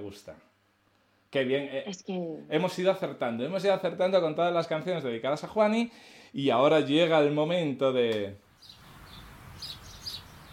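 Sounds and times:
soft steady hiss: 0:00.0 - 0:10.5
speech: 0:00.1 - 0:00.5, 0:01.3 - 0:08.8
small birds chirping: 0:08.4 - 0:10.5.

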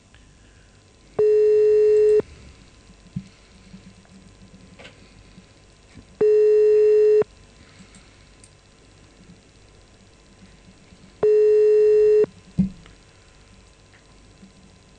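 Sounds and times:
telephone ringback tone while calling a police station: 0:01.2 - 0:02.2, 0:06.2 - 0:07.2, 0:11.2 - 0:12.3.

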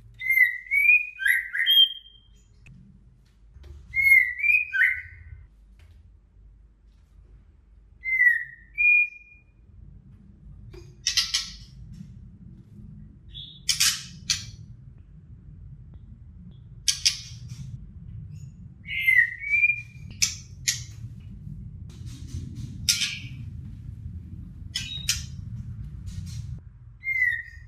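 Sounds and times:
female white-rumped shama whistled song: 0:00.2 - 0:02.5, 0:03.9 - 0:05.4, 0:08.0 - 0:09.5, 0:13.3 - 0:14.6, 0:18.3 - 0:20.9, 0:24.7 - 0:25.4, 0:27.0 - 0:27.6.

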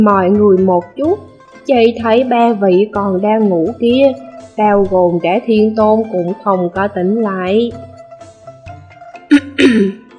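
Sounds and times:
speech: 0:00.0 - 0:07.9, 0:09.3 - 0:10.0
person imitating a light dry cough: 0:09.3 - 0:10.0.

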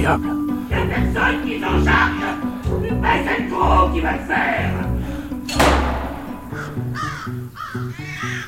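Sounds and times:
speech: 0:00.0 - 0:05.8, 0:06.6 - 0:08.4
heavy thud: 0:05.5 - 0:07.0
crows cawing: 0:06.2 - 0:08.4.

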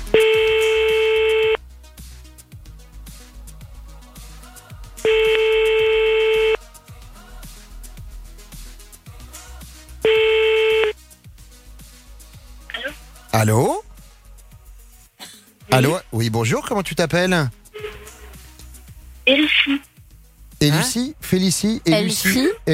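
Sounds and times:
rhythmic beat-driven music bed: 0:00.0 - 0:01.6, 0:02.2 - 0:15.0, 0:15.6 - 0:22.7
telephone call ringing out as a steady electronic tone: 0:05.1 - 0:06.6, 0:10.1 - 0:10.9
speech: 0:13.4 - 0:13.8, 0:15.8 - 0:17.6, 0:19.3 - 0:19.9, 0:20.6 - 0:22.7.

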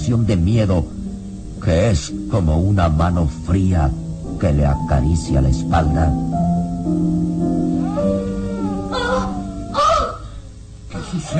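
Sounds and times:
speech: 0:00.1 - 0:01.0, 0:01.6 - 0:08.3, 0:11.1 - 0:11.3
wolf howl in a radio drama: 0:07.7 - 0:10.5.

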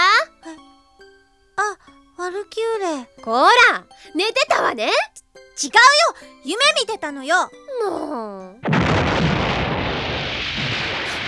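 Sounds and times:
speech: 0:02.4 - 0:09.0
loud explosion echoing through a town: 0:08.6 - 0:11.2.

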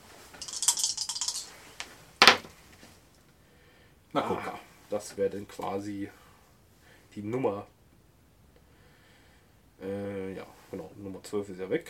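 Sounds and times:
dice being rolled to decide who starts a game: 0:00.4 - 0:02.4
speech: 0:04.1 - 0:06.2, 0:07.2 - 0:07.8, 0:09.8 - 0:11.8.

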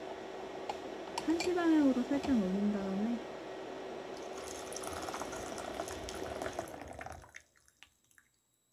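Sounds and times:
speech: 0:01.3 - 0:03.3
hot water poured to brew tea: 0:04.2 - 0:08.4
water dripping: 0:07.2 - 0:08.5.

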